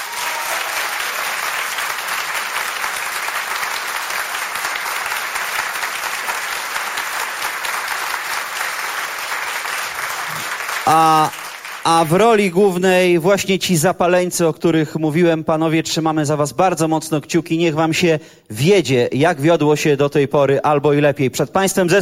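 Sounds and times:
concert audience applause: 0.0 - 12.2
speech: 10.9 - 21.9.

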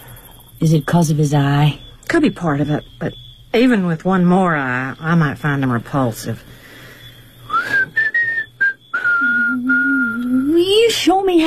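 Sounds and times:
speech: 0.6 - 6.6, 11.0 - 11.4
person whistling: 7.5 - 10.5.

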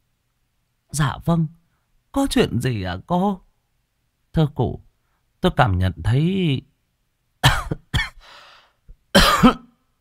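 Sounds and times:
speech: 0.9 - 3.5, 4.4 - 4.8, 5.4 - 6.7, 9.4 - 9.6
woman coughing softly: 7.4 - 8.2, 9.2 - 9.8.

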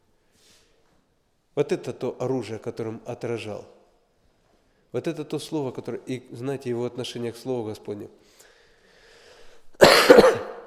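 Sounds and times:
speech: 1.6 - 3.8, 4.9 - 8.4
harsh cough from a speaker at a seminar recovering from illness: 9.8 - 10.6.

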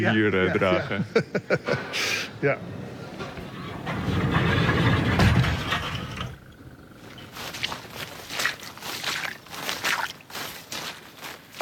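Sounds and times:
laughter: 0.0 - 2.4
speech: 0.0 - 2.8
footsteps of people walking into an old marsh area: 3.0 - 11.6.

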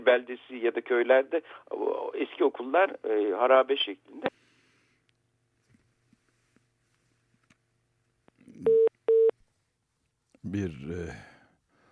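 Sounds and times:
speech: 0.0 - 4.4, 10.5 - 11.3
telephone busy signal after a call disconnects: 8.7 - 9.3.

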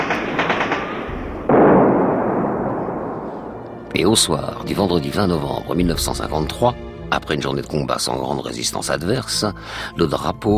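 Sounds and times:
heavy machine gun fire during a jungle assault in Indochina: 0.0 - 3.9
speech: 3.9 - 10.5.

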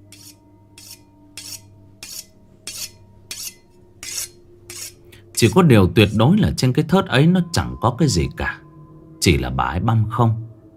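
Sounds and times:
knife being sharpened in a kitchen: 0.1 - 5.0
speech: 5.4 - 8.6, 9.2 - 10.5.

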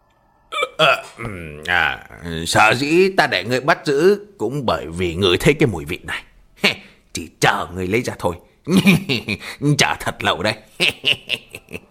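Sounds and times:
person imitating a smug hiccup: 0.5 - 1.7
speech: 0.8 - 6.3, 7.2 - 11.8
laughter: 10.7 - 11.8.

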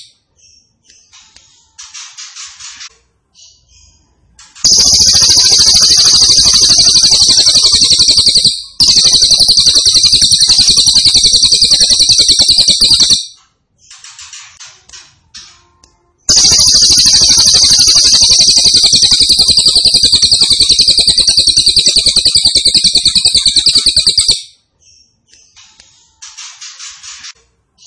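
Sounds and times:
grey-cheeked tit-babbler singing buzzing trills: 4.6 - 13.1, 16.3 - 24.4.

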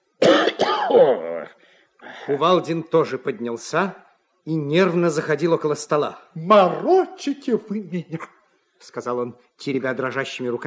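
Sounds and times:
man with a cold coughing: 0.2 - 1.2
speech: 0.9 - 10.6.

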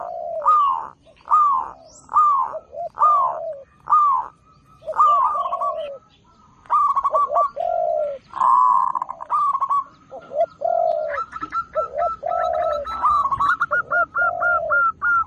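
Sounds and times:
Zebra dove song: 0.0 - 15.2.

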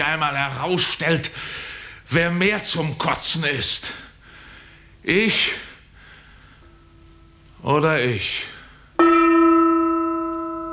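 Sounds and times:
speech: 0.0 - 4.1, 5.0 - 5.7, 7.6 - 9.3
gong struck: 9.0 - 10.7.

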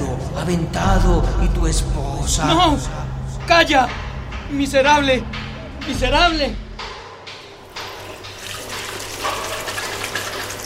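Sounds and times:
speech: 0.5 - 6.6
water gushing from a fountain spout into a stone basin: 7.9 - 10.6.

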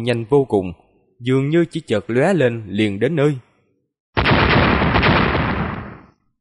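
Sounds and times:
speech: 0.0 - 3.5
explosions from lightning strikes: 4.2 - 6.2.

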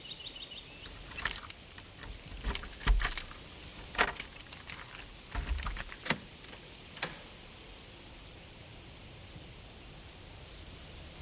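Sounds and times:
keys jangling: 1.0 - 6.2.

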